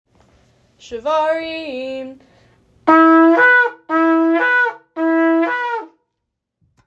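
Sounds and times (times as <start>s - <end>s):
shofar shevarim blasts: 2.8s - 6.0s.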